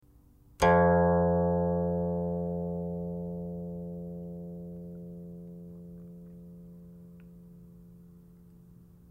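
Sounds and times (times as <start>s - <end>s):
guqin: 0.6s - 7.2s.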